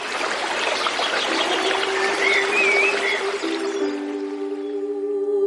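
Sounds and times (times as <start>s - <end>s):
water trickling and babbling in a small stream: 0.0s - 4.8s
bird chirp: 0.0s - 4.9s
sustained musical tones: 1.0s - 5.3s.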